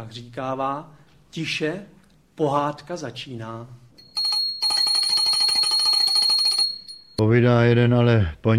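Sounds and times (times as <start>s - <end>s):
speech: 0.0s - 3.8s, 7.2s - 8.5s
small rare hand bell ringing to mark the start of a tale: 4.0s - 7.2s.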